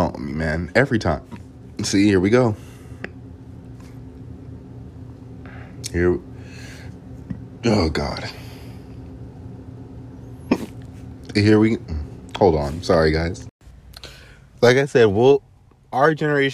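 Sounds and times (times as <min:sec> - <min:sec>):
speech: 0:00.1 - 0:02.7, 0:05.9 - 0:06.3, 0:07.6 - 0:08.4, 0:11.4 - 0:13.5, 0:14.6 - 0:16.5
person hiccuping: 0:10.5 - 0:10.8.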